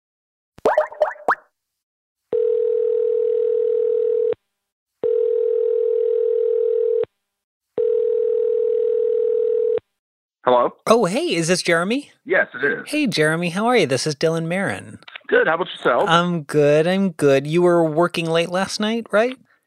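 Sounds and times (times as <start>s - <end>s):
long steady phone line ringing tones: 2.3s - 4.4s, 5.0s - 7.0s, 7.8s - 9.8s
speech: 10.5s - 19.6s.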